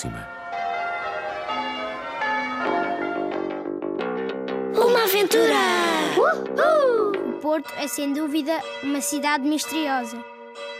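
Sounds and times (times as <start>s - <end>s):
speech: 0.0s - 0.3s, 5.1s - 6.8s, 7.4s - 10.4s
church bells pealing: 0.0s - 4.2s, 7.4s - 10.7s.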